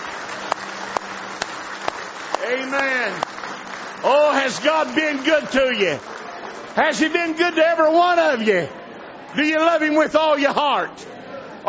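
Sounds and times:
sharp accented claps: 0.0 - 7.2
congregation applause in praise at a church service: 0.0 - 8.7
speech: 2.5 - 3.3, 4.0 - 6.2, 6.8 - 11.6.

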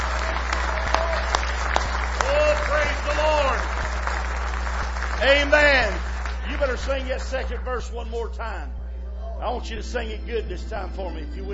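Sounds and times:
audience clapping hands in praise: 0.0 - 8.4
speech: 6.6 - 8.8, 9.4 - 11.5.

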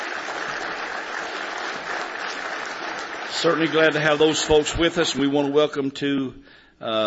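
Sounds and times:
audience applause at a morning church service: 0.0 - 5.2
speech: 3.4 - 7.0.

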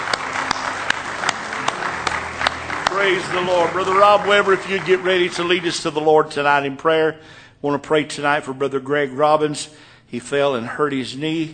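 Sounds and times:
church congregation clapping hands in praise: 0.0 - 6.6
speech: 3.0 - 11.5.

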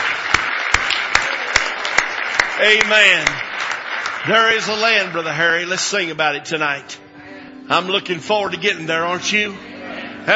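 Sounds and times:
sharp hand claps in a regular rhythm: 0.0 - 5.4
congregation applauding at a church service: 0.0 - 6.9
speech: 2.6 - 3.5, 4.2 - 7.0, 7.7 - 10.3.

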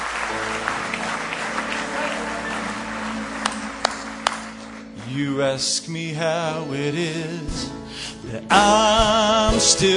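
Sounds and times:
church congregation voices: 0.0 - 5.1
church congregation clapping in praise: 0.0 - 6.0
speech: 5.2 - 9.9.

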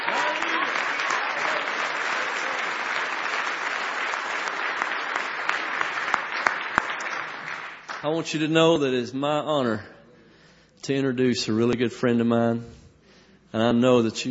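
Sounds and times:
audience applause: 0.0 - 8.0
sharper individual claps: 0.0 - 8.1
speech: 8.0 - 9.9, 10.9 - 12.8, 13.5 - 14.2.

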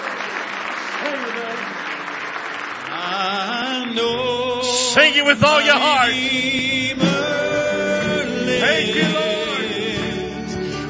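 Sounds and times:
church audience clapping in praise: 0.0 - 10.6
speech: 5.0 - 7.1.

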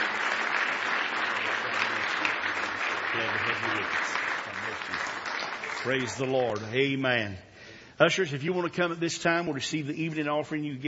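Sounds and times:
audience applauding at a church evening service: 0.0 - 6.8
speech: 3.2 - 5.2, 5.8 - 10.8.

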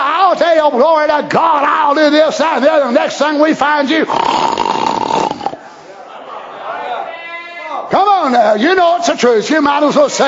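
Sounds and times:
faint noise: 0.0 - 10.2
speech: 0.3 - 4.6, 8.3 - 10.2
voice imitating a loud rasping snore: 4.0 - 5.6.

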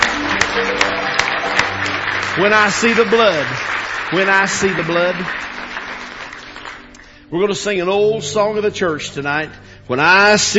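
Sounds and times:
audience clapping hands in applause: 0.0 - 7.2
speech: 2.4 - 5.4, 7.3 - 10.5.

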